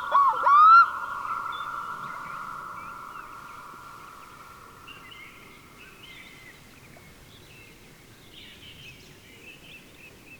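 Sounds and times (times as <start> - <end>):
Black-throated loon whistled calls: 0.0 - 3.4
droning hum with faint higher notes: 0.0 - 5.9.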